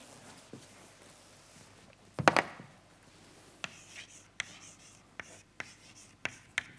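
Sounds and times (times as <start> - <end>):
writing an equation on a board during a mathematics lecture: 3.6 - 6.7.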